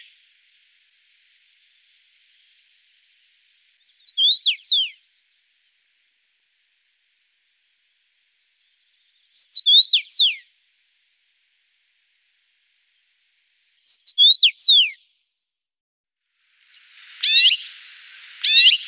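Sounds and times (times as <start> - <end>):
common rosefinch singing: 3.9 - 4.9, 9.3 - 10.4, 13.9 - 15.0, 17.0 - 17.7, 18.3 - 18.8.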